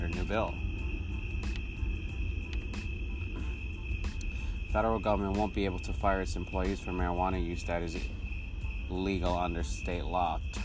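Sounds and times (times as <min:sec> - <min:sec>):
crickets trilling at night on a patio: 0:00.0 - 0:10.6
low rumble: 0:00.0 - 0:10.6
speech: 0:00.3 - 0:00.6, 0:04.7 - 0:08.2, 0:08.9 - 0:10.6.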